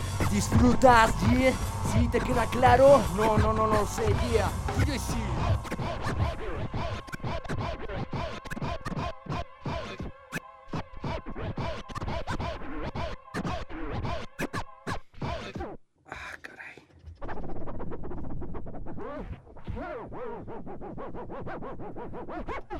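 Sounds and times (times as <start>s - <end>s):
DJ turntable scratching: 0.0s - 15.8s, 17.1s - 22.7s
loud hip-hop beat: 0.0s - 15.8s
speech: 0.3s - 8.4s.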